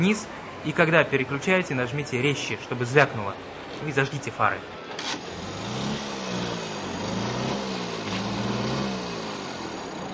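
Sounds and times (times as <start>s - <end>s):
speech: 0.0s - 5.2s
car engine running and revving: 5.0s - 10.1s.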